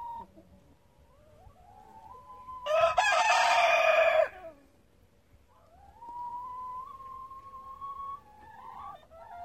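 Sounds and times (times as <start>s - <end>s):
domestic rooster crowing in a henhouse: 2.6s - 4.4s.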